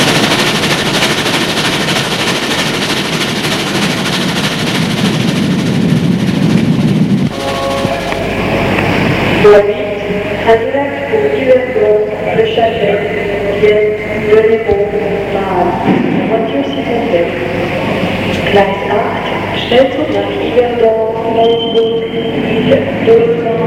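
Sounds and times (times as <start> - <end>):
train arriving in Paris with rumbling clatter of rolling rail cars: 0.0 - 23.6
sustained tonal train horn-like notes: 7.3 - 10.4.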